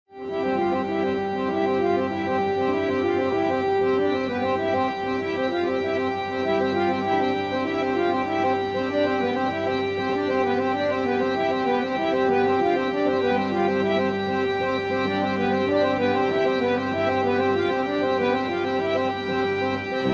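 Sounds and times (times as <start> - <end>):
harmonium: 0.1 - 20.1.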